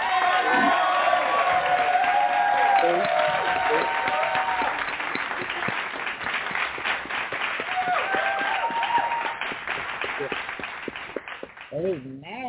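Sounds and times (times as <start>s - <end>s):
scattered cheers: 0.0s - 5.2s, 7.6s - 9.7s
audience clapping to welcome a woman leading a Bible lesson: 0.0s - 12.1s.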